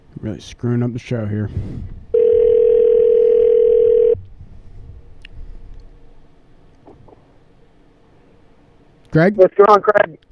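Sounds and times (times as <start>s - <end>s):
speech: 0.2s - 2.0s, 9.2s - 10.2s
telephone ringing tone: 2.1s - 4.2s.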